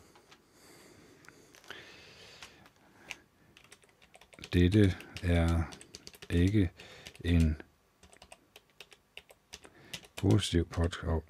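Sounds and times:
typing on a computer keyboard: 2.4 - 11.0
speech: 4.5 - 7.7, 10.2 - 11.2.

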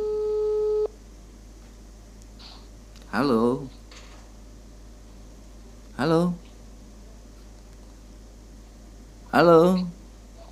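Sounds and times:
steady mid-pitched telephone line tone: 0.0 - 0.9
speech: 3.1 - 3.8, 6.0 - 6.5, 9.3 - 10.0.

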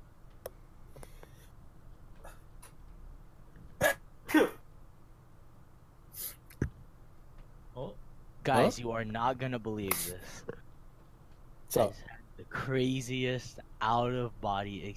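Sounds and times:
person sneezing in a sharp double burst: 3.8 - 4.6
person sniffling: 6.1 - 6.5
speech: 8.5 - 10.5, 11.7 - 14.9.

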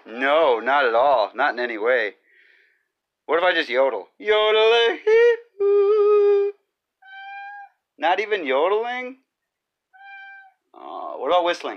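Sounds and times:
speech: 0.1 - 2.2, 3.3 - 6.0, 8.0 - 9.2, 10.8 - 11.7
cat meowing: 7.0 - 7.8, 9.9 - 10.6.

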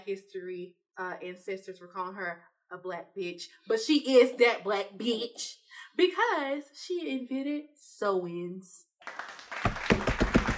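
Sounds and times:
speech: 0.0 - 9.3
hands clapping in applause: 9.0 - 10.5.

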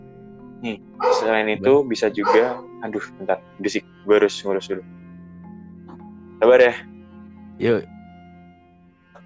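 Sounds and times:
speech: 0.6 - 5.0, 6.4 - 6.9, 7.6 - 8.0
dog barking and whimpering: 1.0 - 1.4, 2.2 - 2.6.

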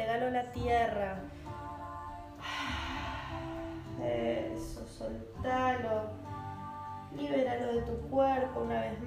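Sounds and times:
speech: 0.2 - 1.4, 4.0 - 6.2, 7.1 - 9.0
deep inhale and exhale through the mouth during a guided relaxation: 2.4 - 4.6.

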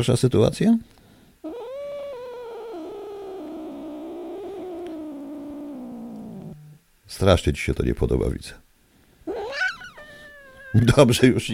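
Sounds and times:
speech: 0.0 - 1.0, 7.2 - 8.6, 10.7 - 11.5
annoyed cat complaining yowl and sustained whine: 1.4 - 6.8, 9.3 - 11.1.

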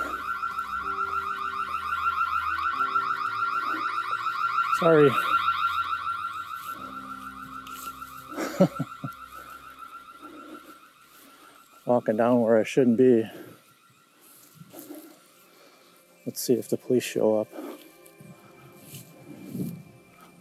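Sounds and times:
loud electronic alarm with rapidly pulsing tone: 0.0 - 20.4
speech: 4.8 - 5.3, 8.6 - 9.0, 12.0 - 13.4, 16.4 - 17.6
laughter: 8.3 - 9.3.

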